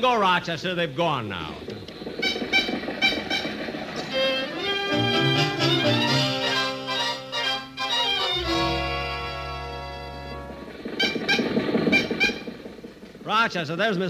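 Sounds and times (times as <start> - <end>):
speech: 0.0 - 1.9, 5.1 - 6.3, 13.3 - 14.0
old car engine sputtering and wheezing trying to start: 0.0 - 14.0.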